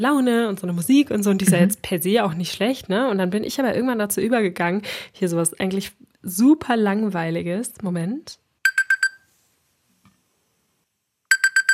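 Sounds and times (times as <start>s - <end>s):
speech: 0.0s - 8.4s
classic alarm clock ringtone with bright electronic beeps: 8.6s - 9.3s, 11.3s - 11.7s.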